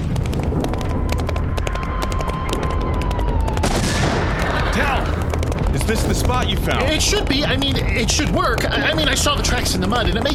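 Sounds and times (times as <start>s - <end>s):
low rumbling din of battle noise: 0.0s - 10.3s
gunshots in an irregular barrage: 3.5s - 6.1s
speech: 5.9s - 10.3s.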